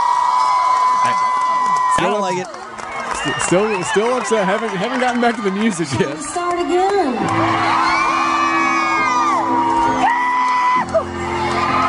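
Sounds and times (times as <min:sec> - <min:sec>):
audience screaming and cheering at a live music performance: 0:00.0 - 0:11.8
continuous crowd roar: 0:00.0 - 0:11.8
speech: 0:02.0 - 0:02.6, 0:03.2 - 0:08.0.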